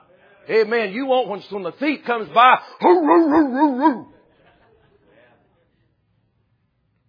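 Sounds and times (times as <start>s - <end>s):
speech: 0.5s - 4.1s
human voice imitating a small poodle yipping: 2.8s - 4.1s.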